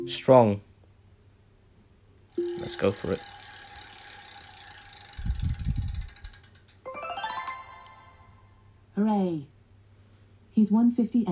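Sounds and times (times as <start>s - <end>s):
speech: 0.0s - 0.7s, 2.4s - 3.3s, 9.0s - 9.5s, 10.6s - 11.3s
bright ringing tone: 2.3s - 6.2s, 6.9s - 8.8s
carnival prize wheel spinning and clicking at a fair: 2.3s - 8.3s.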